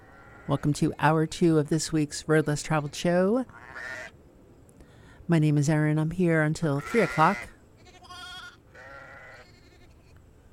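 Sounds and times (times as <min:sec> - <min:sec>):
speech: 0:00.5 - 0:04.2, 0:05.3 - 0:07.5
sheep bleating: 0:03.6 - 0:04.1, 0:06.7 - 0:10.1.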